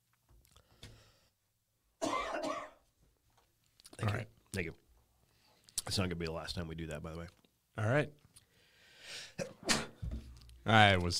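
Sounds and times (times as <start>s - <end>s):
harsh cough: 2.0s - 2.8s, 9.4s - 10.0s
speech: 4.6s - 4.8s, 5.9s - 8.2s, 10.7s - 11.1s
throat clearing: 9.4s - 10.0s.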